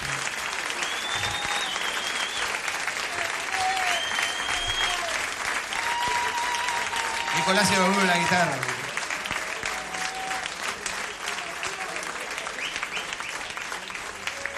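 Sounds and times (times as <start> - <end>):
audience applause for a live music performance: 0.0 - 14.5
audience whistles: 0.6 - 2.6, 3.7 - 5.2, 12.6 - 13.5
speech: 7.5 - 8.8.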